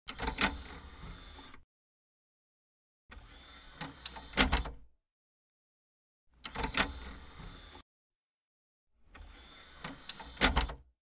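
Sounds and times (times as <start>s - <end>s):
computer CD-DVD drive tray opening and closing: 0.1s - 1.6s, 3.1s - 4.8s, 6.4s - 7.8s, 9.1s - 10.9s.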